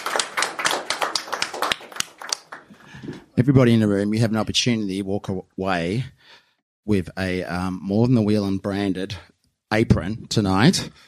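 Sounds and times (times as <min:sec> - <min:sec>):
audience applause at an evening event: 0:00.0 - 0:03.2
speech: 0:03.4 - 0:11.0.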